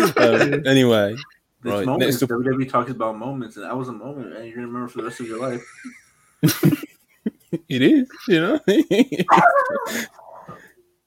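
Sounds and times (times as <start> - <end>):
laughter: 0.0 - 0.8, 5.0 - 10.2
speech: 0.0 - 6.8, 7.5 - 10.2
dog yipping: 9.3 - 10.6.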